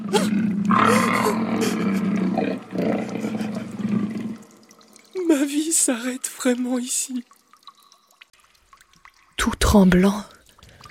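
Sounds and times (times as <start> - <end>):
lion roaring with a deep sustained growl: 0.0 - 4.4
speech: 5.8 - 7.4, 9.7 - 10.4.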